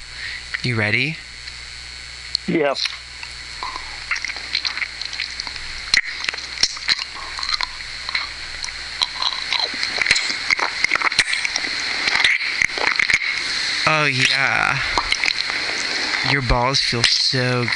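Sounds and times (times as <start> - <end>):
speech: 0.6 - 1.3, 2.5 - 3.0, 14.1 - 15.0, 16.2 - 17.7
wet mouth smacking, slurping and sucking clicks: 3.6 - 16.4.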